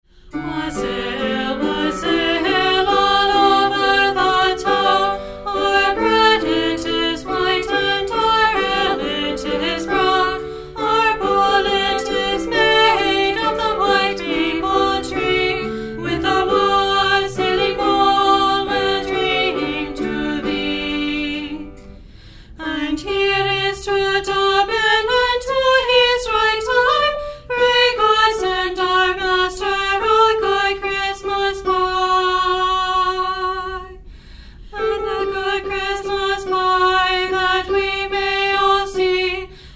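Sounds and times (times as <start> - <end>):
girl alto singing a wassail song: 0.3 - 21.9, 22.6 - 34.0, 34.7 - 39.5.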